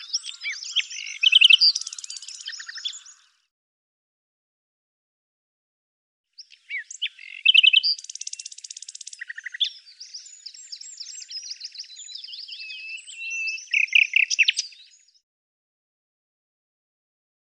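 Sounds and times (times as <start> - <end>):
bird song of high chirps buzzy rattle and twittering: 0.0 - 3.5, 6.3 - 15.3.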